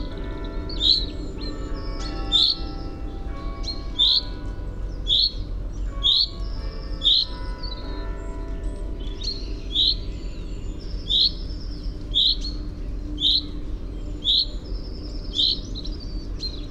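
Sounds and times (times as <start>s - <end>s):
Common chaffinch Fringilla coelebs calling with emphatic single pink notes: 0.0s - 2.9s, 5.1s - 5.4s, 6.0s - 7.9s, 9.2s - 10.2s, 11.0s - 12.6s, 13.2s - 13.6s, 14.2s - 16.6s
low steady hum: 0.0s - 16.6s.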